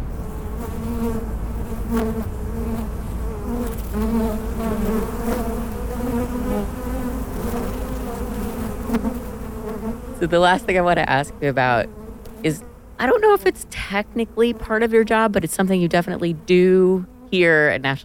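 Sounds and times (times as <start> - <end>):
many honeybees buzzing inside a rooftop beehive: 0.0 - 18.0
speech: 1.9 - 2.4, 10.2 - 18.0.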